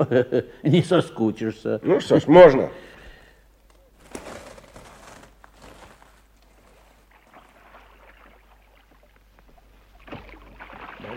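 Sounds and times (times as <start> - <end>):
speech: 0.0 - 2.9
oars dipping and splashing through lake water: 4.1 - 11.1.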